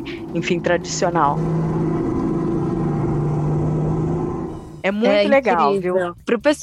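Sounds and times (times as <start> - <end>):
speech: 0.0 - 2.3, 4.8 - 6.6
electric go-kart accelerating on a track: 0.0 - 5.3.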